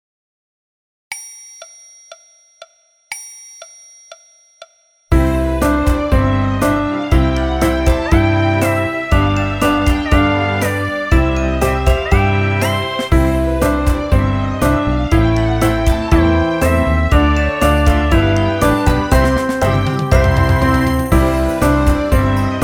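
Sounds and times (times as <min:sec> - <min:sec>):
nursery rhyme played on piano with orchestra: 0:05.1 - 0:22.6.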